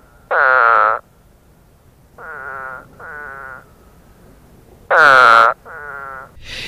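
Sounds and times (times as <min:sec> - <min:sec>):
spadefoot toad explosive nasal retching calls: 0:00.2 - 0:01.0, 0:02.2 - 0:03.7, 0:04.9 - 0:06.6.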